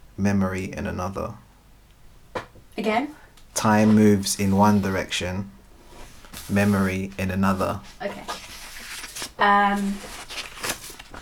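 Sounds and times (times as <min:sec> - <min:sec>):
speech: 0:00.2 - 0:01.4, 0:02.8 - 0:05.6, 0:06.4 - 0:08.4, 0:09.4 - 0:10.2
paper sheet rustling and crinkling as a man folds it: 0:06.0 - 0:11.2.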